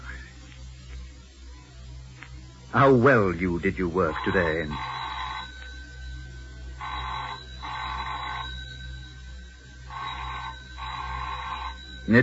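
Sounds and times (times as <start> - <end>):
low steady hum: 0.0 - 12.2
speech: 2.7 - 5.0
telephone ringing in double bursts: 3.8 - 12.2.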